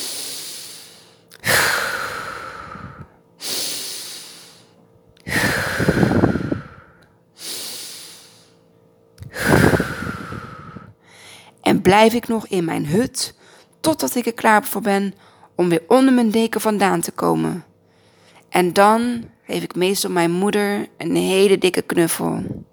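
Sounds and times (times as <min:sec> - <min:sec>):
deep breaths in through the nose, out through the mouth: 0:00.0 - 0:11.6, 0:17.8 - 0:18.5
speech: 0:11.9 - 0:17.7, 0:18.5 - 0:22.6.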